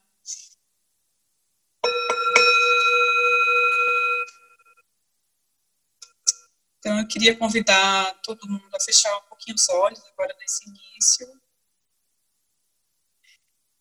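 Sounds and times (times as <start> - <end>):
meditation bell being struck: 1.8 - 4.8
speech: 6.8 - 11.4.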